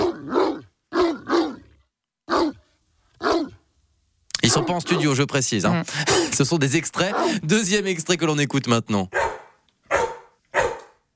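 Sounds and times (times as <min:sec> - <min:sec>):
dog barking: 0:00.0 - 0:01.6, 0:02.3 - 0:02.6, 0:03.2 - 0:03.6, 0:04.4 - 0:05.2, 0:07.1 - 0:07.4, 0:09.1 - 0:11.1
speech: 0:04.6 - 0:09.3.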